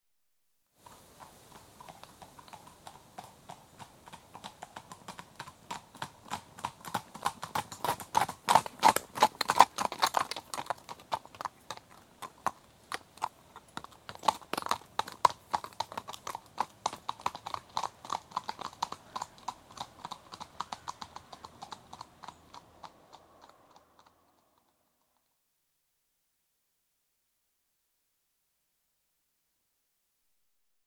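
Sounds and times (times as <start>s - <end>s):
wind in trees: 0.8s - 9.8s, 10.4s - 25.2s
two horses trotting on tarmac: 0.8s - 24.8s.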